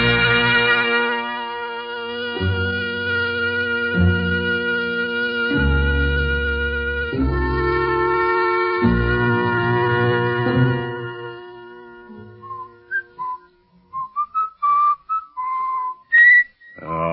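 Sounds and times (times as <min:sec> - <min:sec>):
sustained low musical chord: 0:00.0 - 0:13.4
person whistling a short halting tune: 0:12.4 - 0:16.8.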